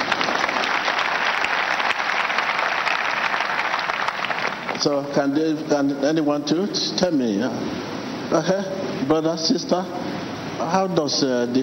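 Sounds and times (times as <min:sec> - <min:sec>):
crowd clapping: 0:00.0 - 0:05.1
speech: 0:04.8 - 0:11.6.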